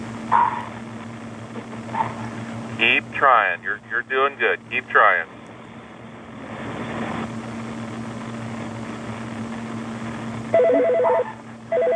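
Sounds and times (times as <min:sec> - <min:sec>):
low hum: 0:00.0 - 0:11.9
speech: 0:00.3 - 0:00.7, 0:01.6 - 0:05.4, 0:10.5 - 0:11.9
electronic doorbell ringing as a fire crew arrives: 0:10.6 - 0:11.9.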